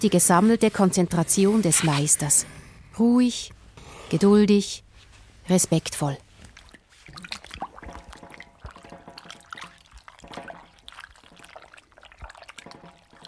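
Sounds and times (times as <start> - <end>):
speech: 0.0 - 4.8, 5.5 - 6.2
water sloshing and trickling as parchment pieces are soaked in a workshop: 6.0 - 13.2.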